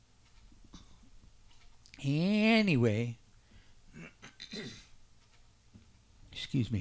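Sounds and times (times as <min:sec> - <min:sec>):
speech: 0:02.0 - 0:03.2, 0:06.5 - 0:06.7
person clearing throat: 0:03.9 - 0:05.0.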